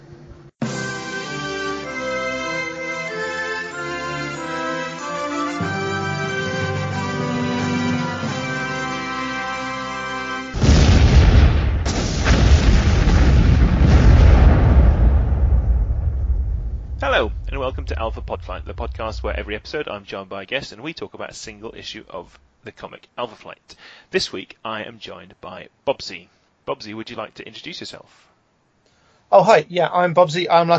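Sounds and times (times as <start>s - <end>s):
national anthem played on full sustained instruments: 0.6s - 12.2s, 16.8s - 20.1s
loud explosion: 10.6s - 20.0s
speech: 17.8s - 28.3s, 29.3s - 30.7s.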